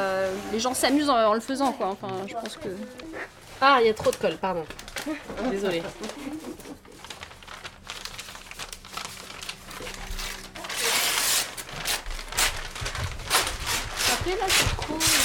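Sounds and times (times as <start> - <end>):
speech: 0.5 - 6.5, 14.3 - 15.2
paper torn and crumpled for gluing: 4.0 - 15.2.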